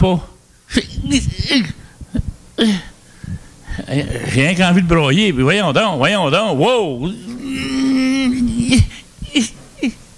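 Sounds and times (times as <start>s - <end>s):
speech: 0.0s - 1.8s, 2.6s - 2.9s, 3.9s - 7.7s, 8.7s - 9.5s
person crying with joy: 0.7s - 2.9s, 7.1s - 10.0s.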